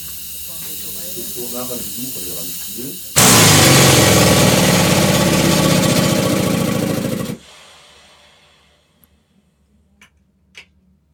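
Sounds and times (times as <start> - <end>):
loud rush of pressurized air being let out: 0.0 - 8.8
speech: 1.2 - 3.8.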